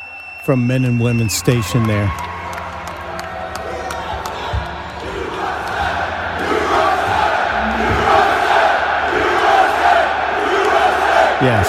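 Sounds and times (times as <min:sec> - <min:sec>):
speech: 0:00.4 - 0:02.3, 0:11.4 - 0:11.6
troops chanting and cheering in a big space: 0:03.4 - 0:11.6.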